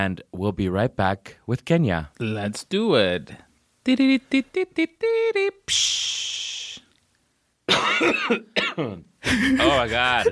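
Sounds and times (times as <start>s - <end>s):
speech: 0.0s - 6.8s, 7.7s - 10.3s
person coughing: 7.7s - 9.7s.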